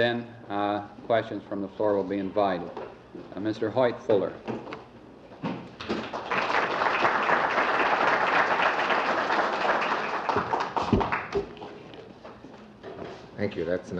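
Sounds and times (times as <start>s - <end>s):
speech: 0.0s - 4.8s, 13.4s - 13.9s
audience applause for a speaker at a public talk: 5.9s - 11.5s.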